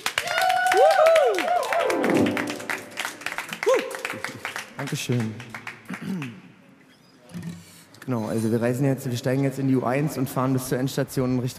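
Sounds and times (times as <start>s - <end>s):
crowd applauding: 0.0s - 6.5s
whoops and cheers from several voices: 0.1s - 2.6s, 3.5s - 4.2s
speech: 4.8s - 6.4s, 8.1s - 11.5s.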